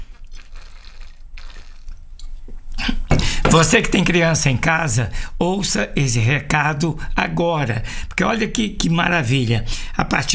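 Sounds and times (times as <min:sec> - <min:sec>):
sharper clink or slurp: 0:00.0 - 0:02.0
person taking a quick sip of water: 0:00.0 - 0:03.1
wet swallowing and gulping: 0:00.0 - 0:03.2
speech: 0:03.6 - 0:10.3.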